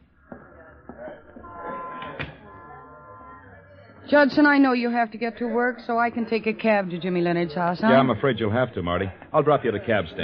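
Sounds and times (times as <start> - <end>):
murmur of voices talking: 0.0 - 10.2
door opening and closing: 1.3 - 3.4
speech: 4.1 - 10.2.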